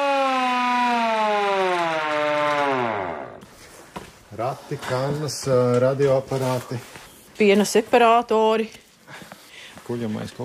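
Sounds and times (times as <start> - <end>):
hand-cranked fire siren winding down in a sustained wail: 0.0 - 3.4
speech: 4.4 - 9.3, 9.9 - 10.4.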